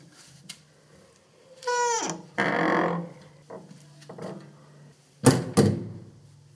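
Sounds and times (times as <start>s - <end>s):
heavy spring-loaded castle door creaking: 1.7s - 3.6s
heavy castle door thudding shut: 5.2s - 6.0s.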